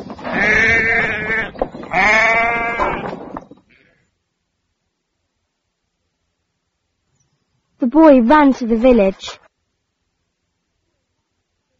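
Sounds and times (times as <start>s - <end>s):
sheep bleating: 0.3s - 4.0s
speech: 7.9s - 9.4s.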